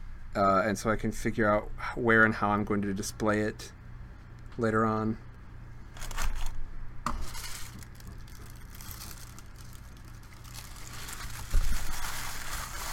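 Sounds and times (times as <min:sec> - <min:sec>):
speech: 0:00.4 - 0:03.8, 0:04.6 - 0:05.3
gold paper crinkling and rustling as a knife is wrapped: 0:05.9 - 0:12.9.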